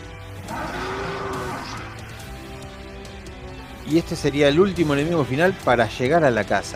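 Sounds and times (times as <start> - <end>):
enraged bull with huge horns bellowing: 0.4 - 2.1
speech: 3.9 - 6.7.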